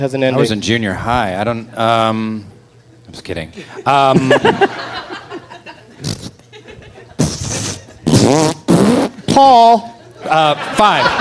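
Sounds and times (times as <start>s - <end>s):
speech: 0.0s - 2.5s, 3.1s - 5.2s, 8.3s - 8.5s, 9.4s - 11.2s
laughter: 3.5s - 8.1s, 9.9s - 11.2s
sputtering raspy fart noises: 6.0s - 6.4s, 7.1s - 9.4s.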